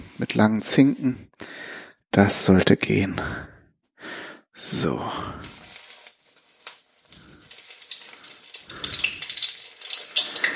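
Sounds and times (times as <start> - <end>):
speech: 0.2 - 3.5, 4.6 - 5.6
hand-formed falafel patties deep-frying in hot oil: 5.4 - 10.5.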